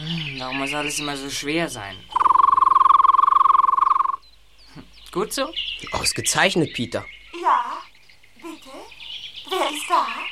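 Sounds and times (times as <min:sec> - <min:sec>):
speech: 0:00.4 - 0:02.1, 0:05.2 - 0:07.6
trilling human whistle: 0:02.1 - 0:04.2.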